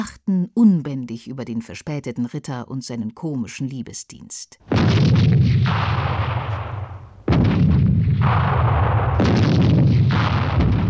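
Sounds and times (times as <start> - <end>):
speech: 0.0 - 6.7, 8.2 - 9.5
heavy cannon fire: 4.7 - 10.8
rolling gunfire: 4.7 - 10.8.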